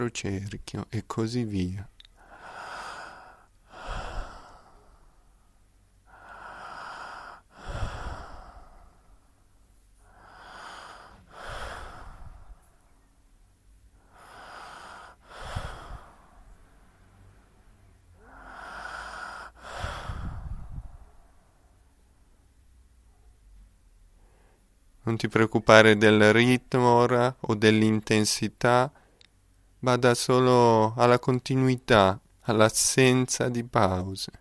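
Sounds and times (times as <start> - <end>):
speech: 0.0 - 1.9, 25.2 - 29.0, 29.8 - 34.3
slow rhythmic breathing during a breathing exercise: 1.9 - 24.9.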